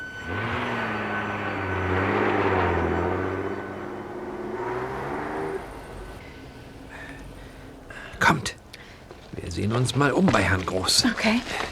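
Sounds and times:
car driving away: 0:00.0 - 0:08.2
speech: 0:09.6 - 0:11.6.

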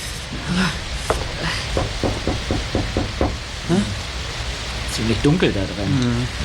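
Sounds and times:
low rumble: 0:00.1 - 0:06.4
speech: 0:00.3 - 0:00.9, 0:05.0 - 0:06.4
knocking on a house door: 0:01.1 - 0:03.5.

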